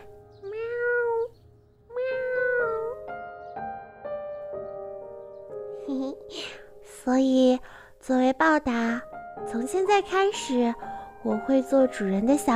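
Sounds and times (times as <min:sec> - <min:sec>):
kitten meowing: 0:00.0 - 0:03.1
speech: 0:07.1 - 0:12.5.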